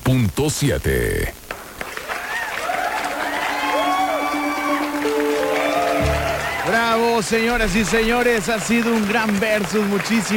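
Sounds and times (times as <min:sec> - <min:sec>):
speech: 0:00.1 - 0:01.4, 0:07.2 - 0:10.3
crowd applauding at the close of a battle event: 0:01.5 - 0:10.3
sustained notes: 0:04.2 - 0:08.8.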